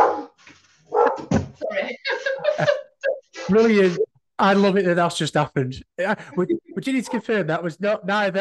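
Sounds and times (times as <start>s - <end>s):
dog barking in short sharp bursts: 0.0s - 1.3s
laughter: 1.8s - 4.0s, 6.1s - 7.2s
speech: 3.5s - 8.4s.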